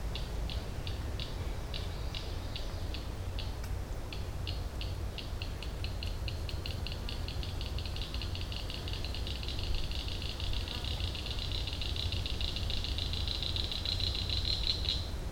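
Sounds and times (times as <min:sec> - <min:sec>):
Northern Cricket Frog calling: 0:00.1 - 0:15.2.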